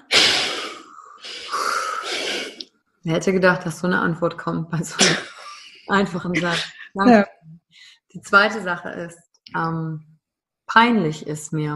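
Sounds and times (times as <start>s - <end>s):
loud deep breath in and out: 0.0s - 2.6s
speech: 3.0s - 5.3s, 5.9s - 10.1s, 10.8s - 11.7s
laughter: 6.4s - 7.0s.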